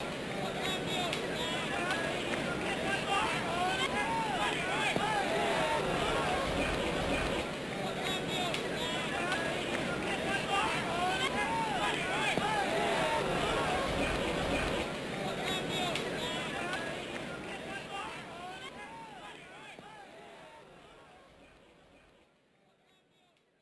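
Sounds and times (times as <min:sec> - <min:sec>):
laughter: 0:00.0 - 0:21.0
cheering: 0:00.0 - 0:21.6.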